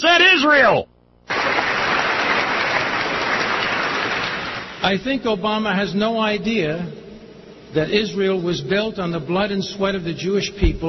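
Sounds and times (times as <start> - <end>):
speech: 0.0 - 1.4, 4.8 - 7.0, 7.7 - 10.8
audience applause: 1.3 - 4.8.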